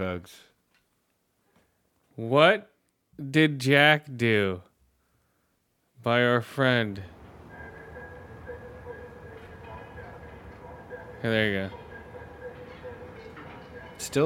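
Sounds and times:
speech: 0:00.0 - 0:00.5, 0:02.2 - 0:04.7, 0:06.0 - 0:07.2, 0:11.2 - 0:11.8, 0:14.0 - 0:14.2
steady low rumble of train station ambience: 0:06.9 - 0:14.2
laughter: 0:07.5 - 0:14.1.

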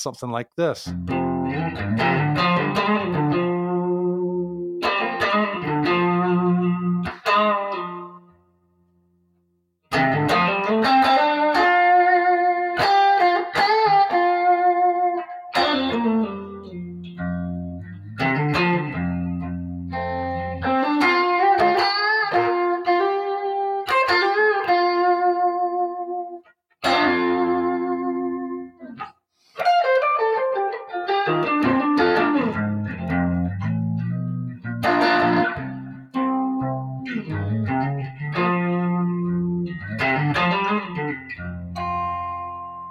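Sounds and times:
speech: 0:00.0 - 0:03.4
overdriven electric guitar through amps playing bluesy phrases: 0:00.9 - 0:08.3, 0:09.9 - 0:29.1, 0:29.7 - 0:42.8.

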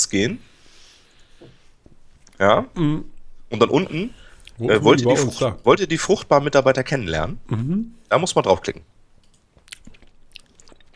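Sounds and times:
speech: 0:00.0 - 0:00.5, 0:02.4 - 0:09.0
wet chewing with smacking lips: 0:09.3 - 0:10.9.

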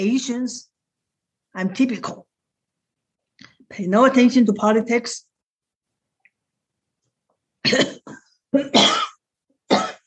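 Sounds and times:
speech: 0:00.0 - 0:00.7, 0:01.5 - 0:02.3, 0:03.7 - 0:05.3, 0:07.6 - 0:09.1
harsh throat-clearing hack: 0:07.6 - 0:10.0
person coughing: 0:07.6 - 0:10.0.

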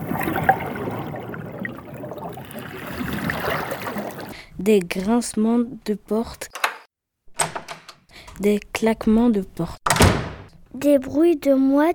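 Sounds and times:
sea noise sound effect, continuous rushing wash of water: 0:00.0 - 0:04.5
speech: 0:04.6 - 0:06.6, 0:08.4 - 0:09.9, 0:10.8 - 0:11.9.

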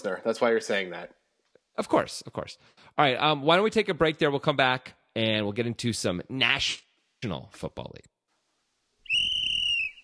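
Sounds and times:
speech: 0:00.0 - 0:01.2, 0:01.8 - 0:08.1
sustained whistle blast with a clear bright tone: 0:09.1 - 0:10.0.

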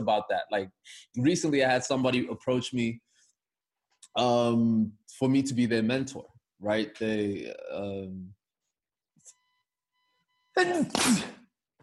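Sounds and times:
speech: 0:00.0 - 0:03.1, 0:04.2 - 0:08.4, 0:10.6 - 0:11.4
person sneezing: 0:10.6 - 0:11.5.

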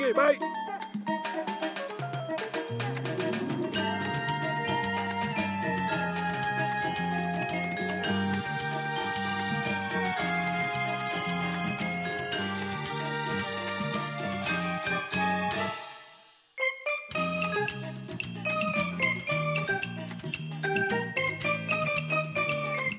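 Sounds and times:
bright cheerful guitar tune: 0:00.0 - 0:15.7, 0:16.7 - 0:22.9
speech: 0:00.1 - 0:00.8.

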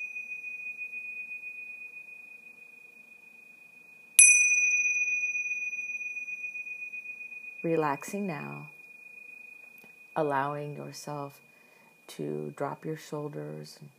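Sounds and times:
meditation chime ringing: 0:00.0 - 0:12.8
pure sustained tone: 0:00.0 - 0:13.9
speech: 0:07.6 - 0:08.8, 0:10.2 - 0:11.5, 0:12.1 - 0:13.9.

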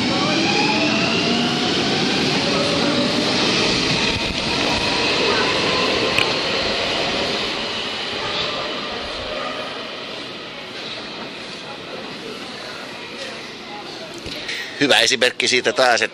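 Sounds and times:
indistinct voices murmuring: 0:00.0 - 0:16.1
metro train rumbling past in an underground station: 0:00.0 - 0:16.1
speech: 0:14.9 - 0:16.1.

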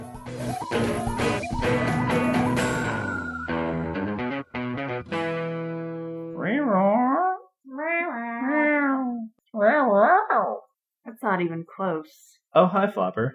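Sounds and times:
bright musical chords: 0:00.0 - 0:06.4
people imitating a house cat's meow: 0:06.4 - 0:10.6
speech: 0:11.4 - 0:13.3.

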